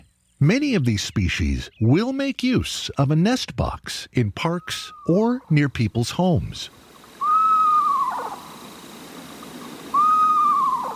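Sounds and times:
speech: 0.4 - 6.8
screech owl wavering whistle call: 7.1 - 10.9.

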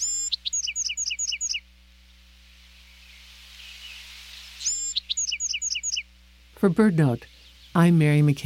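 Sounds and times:
Bewick's wren singing: 0.0 - 1.6, 2.9 - 8.3
soft hiss: 0.0 - 8.4
speech: 6.6 - 8.4.

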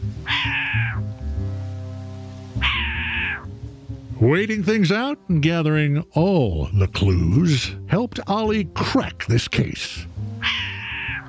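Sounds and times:
short-eared owl raspy cat-like call: 0.2 - 1.0, 2.6 - 3.5, 10.4 - 11.2
speech: 4.2 - 10.2.

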